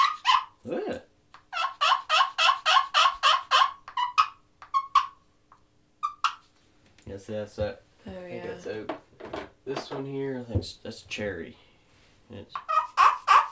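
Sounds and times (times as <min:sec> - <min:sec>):
soft wood turkey call yelps: 0:00.0 - 0:00.6, 0:01.3 - 0:05.3, 0:06.0 - 0:06.5, 0:12.6 - 0:13.4
sharp wooden turkey call notes: 0:01.3 - 0:06.5, 0:12.5 - 0:13.4
speech: 0:07.2 - 0:11.6, 0:12.3 - 0:12.7.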